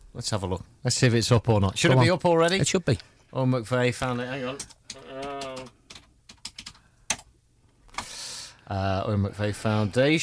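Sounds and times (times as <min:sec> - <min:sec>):
speech: 0:00.2 - 0:05.1, 0:08.7 - 0:10.2
keyboard typing: 0:04.4 - 0:07.3.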